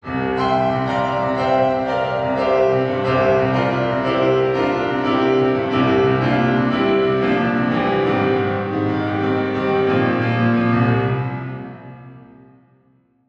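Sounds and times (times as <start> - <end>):
piano reverb tail: 0.0 - 13.0.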